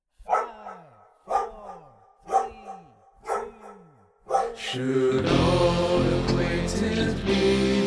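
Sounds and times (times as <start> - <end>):
dog barking a traditional Scotch melody: 0.2 - 4.8
speech: 4.7 - 7.7.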